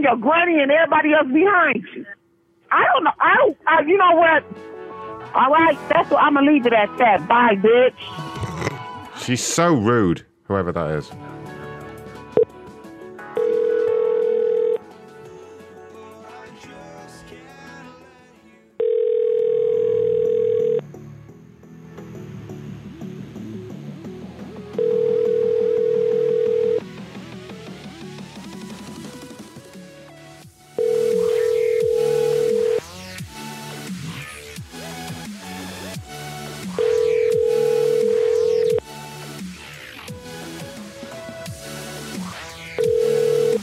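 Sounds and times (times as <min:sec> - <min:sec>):
speech: 0:00.0 - 0:11.3
busy music: 0:03.7 - 0:18.9, 0:21.0 - 0:43.6
phone ringback tone: 0:13.4 - 0:14.8, 0:18.8 - 0:20.9, 0:24.7 - 0:26.8, 0:30.8 - 0:32.9, 0:36.6 - 0:38.9, 0:42.7 - 0:43.6.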